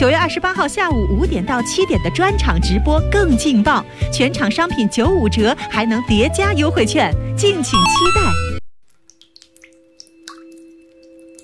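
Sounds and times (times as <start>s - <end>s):
speech: 0.0s - 8.5s
water dripping from a tap: 8.8s - 11.4s.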